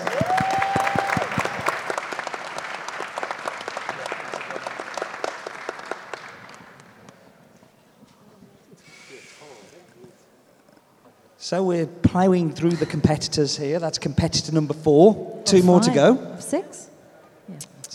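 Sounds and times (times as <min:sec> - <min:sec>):
audience applauding: 0:00.0 - 0:07.3
speech: 0:11.5 - 0:16.6.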